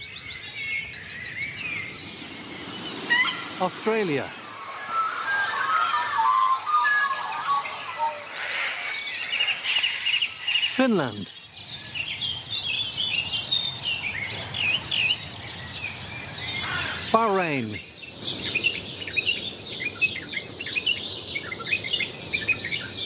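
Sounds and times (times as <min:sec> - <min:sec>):
dawn chorus of many birds singing: 0:00.0 - 0:23.0
descending bird call: 0:00.8 - 0:11.4, 0:15.9 - 0:20.0
speech: 0:03.6 - 0:04.4, 0:10.8 - 0:11.4, 0:17.2 - 0:17.9
person speaking a word: 0:10.7 - 0:11.3, 0:17.1 - 0:17.8.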